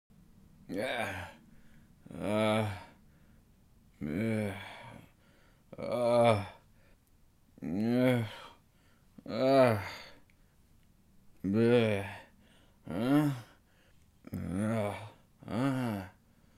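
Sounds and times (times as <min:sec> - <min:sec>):
hungover man groaning groggily while waking: 0:00.7 - 0:01.4, 0:02.1 - 0:03.0, 0:04.0 - 0:05.1, 0:05.8 - 0:06.6, 0:07.6 - 0:08.6, 0:09.2 - 0:10.2, 0:11.4 - 0:13.6, 0:14.3 - 0:16.2.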